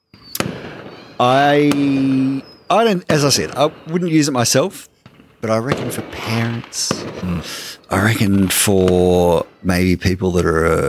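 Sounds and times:
voice imitating Sydney Harbour Bridge fireworks: 0.4 - 2.5, 5.4 - 10.8
speech: 1.2 - 10.8.

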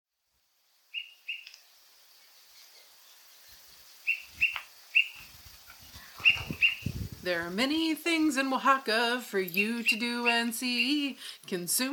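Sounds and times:
Greater Pewee calls in Oaxaca, Mexico: 0.9 - 7.0, 9.5 - 11.1
speech: 7.2 - 11.9.

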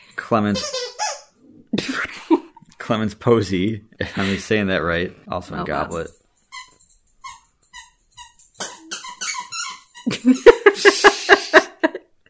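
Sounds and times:
speech: 0.3 - 0.8, 2.9 - 6.2
pizza-shaped squeaky toy squeaking as a puppy chews it: 0.5 - 1.4, 6.4 - 10.2
laughter: 10.1 - 12.0.

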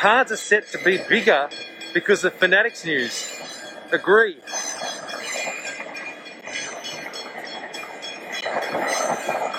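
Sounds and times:
speech: 0.0 - 4.7
train rumbling past: 0.0 - 9.5.

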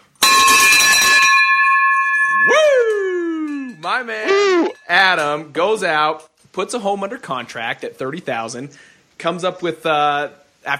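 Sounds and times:
victory bell ringing: 0.2 - 5.0
speech: 4.9 - 10.7.

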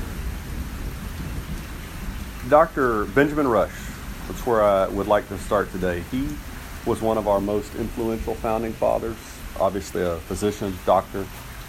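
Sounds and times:
low rolling thunder: 0.0 - 6.9
rain on a tin roof: 0.0 - 11.6
speech: 2.5 - 11.4.

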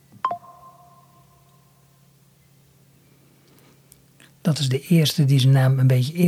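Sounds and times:
electronic droplet-like phone notification tone with echo: 0.2 - 1.2
speech: 4.4 - 6.2.

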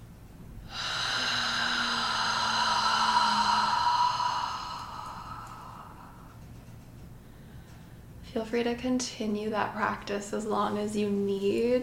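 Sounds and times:
deep breath in during a guided chakra breathing meditation: 0.6 - 6.4
speech: 8.4 - 11.8.

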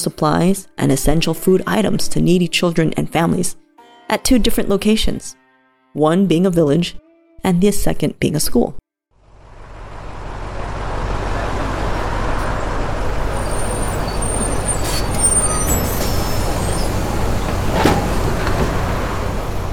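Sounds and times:
speech: 0.0 - 5.4, 6.0 - 8.8
bus engine rumbling: 9.2 - 19.7.

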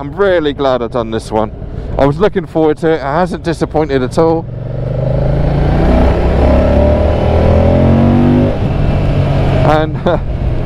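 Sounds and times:
speech: 0.0 - 4.8, 9.7 - 10.3
Moto Guzzi Mandello V100 motorcycle engine at about 30 mph in fourth gear: 2.6 - 10.6.

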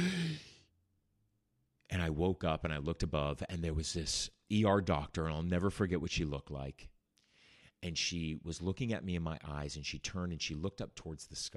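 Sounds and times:
person drawing a sharp breathy gasp: 0.0 - 0.6
speech: 2.0 - 6.9, 7.8 - 11.5.

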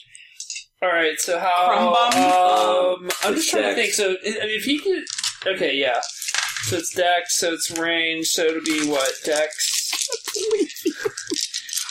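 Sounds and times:
speech: 0.8 - 10.7
laughter: 3.2 - 4.0, 9.6 - 11.9
handful of dice rattling and tumbling across a surface: 5.0 - 7.0, 8.4 - 11.9.

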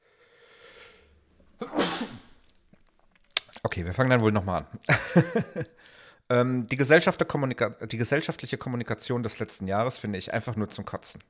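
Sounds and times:
person sneezing: 1.6 - 2.4
speech: 3.8 - 11.2
laughter: 4.9 - 5.7.

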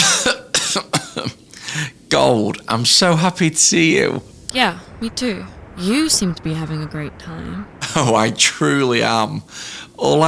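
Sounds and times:
person coughing: 0.0 - 1.2
speech: 0.3 - 1.0, 2.1 - 10.2.

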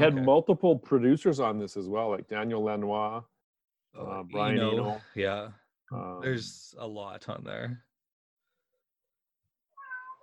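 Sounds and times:
speech: 0.0 - 3.3, 3.9 - 7.9
cat meowing: 9.8 - 10.2.

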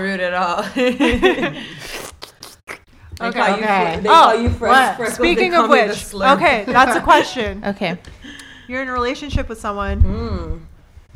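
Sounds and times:
speech: 0.0 - 1.8, 3.2 - 8.1, 8.7 - 10.7
voice imitating loud slurping of a drink: 1.8 - 2.9.

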